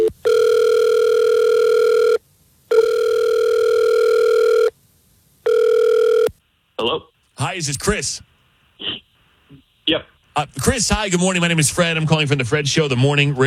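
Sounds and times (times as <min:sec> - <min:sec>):
phone ringback tones on an outgoing call: 0:00.0 - 0:04.7, 0:05.5 - 0:06.3
speech: 0:07.6 - 0:08.3, 0:09.9 - 0:13.4.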